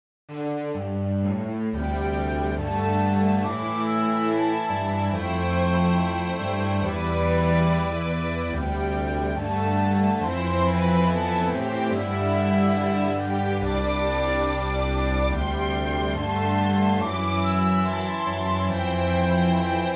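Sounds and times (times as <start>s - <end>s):
cello: 0.3s - 19.9s
flute: 1.3s - 19.9s.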